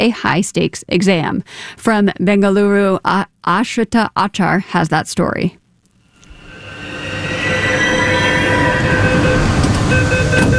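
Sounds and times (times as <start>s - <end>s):
speech: 0.0s - 5.6s
high electrical whine of metro train: 5.9s - 10.5s
faint metallic squeals: 6.1s - 10.5s
metro train rumbling with doors opening for boarding: 6.2s - 10.5s.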